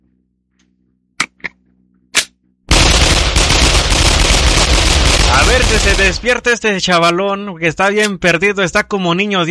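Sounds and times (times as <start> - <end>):
dense continuous roar of rapid gunfire-like noise: 2.7 - 6.4
pistol shots: 2.7 - 6.4
speech: 5.7 - 9.5.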